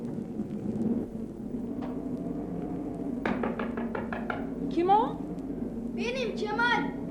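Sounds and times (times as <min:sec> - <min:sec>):
steady rain at night: 0:00.0 - 0:07.0
sharp knocks: 0:03.2 - 0:04.5.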